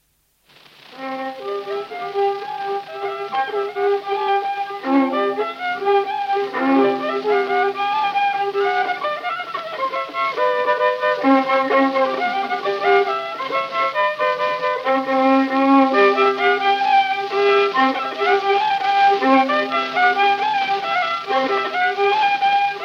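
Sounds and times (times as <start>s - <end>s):
folk circle waltz played on violin: 0.8s - 22.8s.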